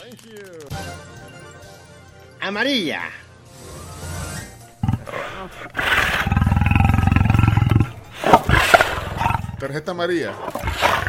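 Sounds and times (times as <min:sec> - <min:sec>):
speech: 0:00.1 - 0:01.1, 0:02.4 - 0:03.2, 0:05.4 - 0:06.1, 0:09.6 - 0:10.6
tiger roaring: 0:04.8 - 0:11.0.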